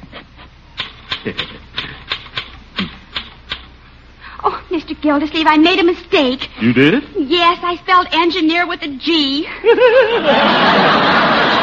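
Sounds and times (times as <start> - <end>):
typewriter keys striking as a letter is typed: 0.8 - 3.7
speech: 1.2 - 1.6, 5.0 - 11.2
laughter: 1.2 - 2.0, 9.5 - 11.6.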